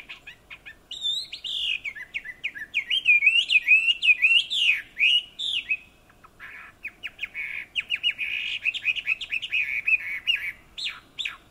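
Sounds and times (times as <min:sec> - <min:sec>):
Chinese hwamei Garrulax canorus singing whistled notes and chattering phrases: 0:00.0 - 0:11.5.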